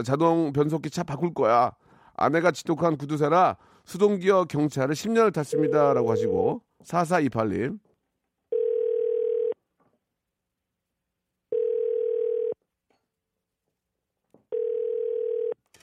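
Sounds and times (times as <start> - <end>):
speech: 0.0 - 7.9
telephone ringback tone of an outgoing call: 5.6 - 6.4, 8.5 - 9.6, 11.5 - 12.6, 14.5 - 15.6.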